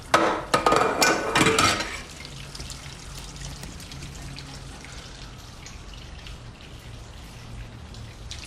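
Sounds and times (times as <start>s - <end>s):
tap water running in a sink in an apartment: 0.0s - 8.4s
dishes clinking and clattering while a man washes them: 0.1s - 2.1s.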